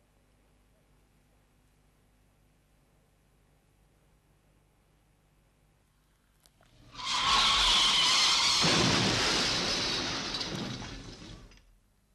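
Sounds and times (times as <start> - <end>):
clattering debris: 6.8 - 11.7
car skid with shrill tire squeal: 6.9 - 11.5
crash of breaking glass: 6.9 - 11.6.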